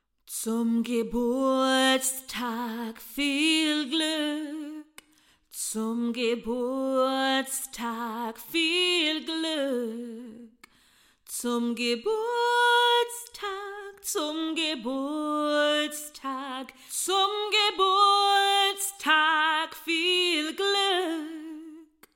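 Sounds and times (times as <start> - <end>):
woman singing a song in German: 0.3 - 22.1.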